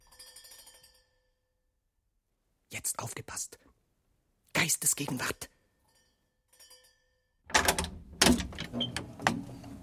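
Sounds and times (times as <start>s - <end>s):
speech: 2.8s - 3.8s, 4.7s - 5.5s, 8.8s - 9.1s
door latch clicks and rattling: 7.5s - 9.6s
door opening: 7.5s - 9.8s.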